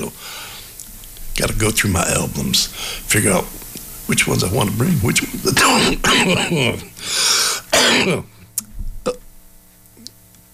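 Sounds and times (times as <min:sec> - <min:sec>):
speech: 0:01.4 - 0:07.3, 0:08.0 - 0:08.3
harsh raspy coughing: 0:05.5 - 0:08.3
throat clearing: 0:05.6 - 0:06.9.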